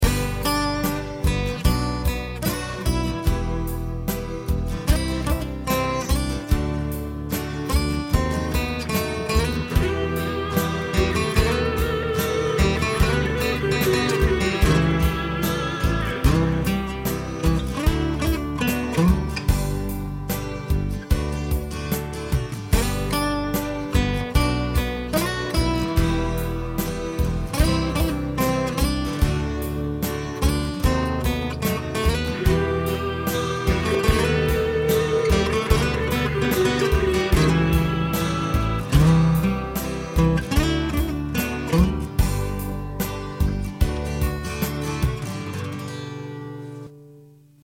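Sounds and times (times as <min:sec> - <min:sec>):
Dowina J-999S acoustic guitar: 0:00.0 - 0:47.6.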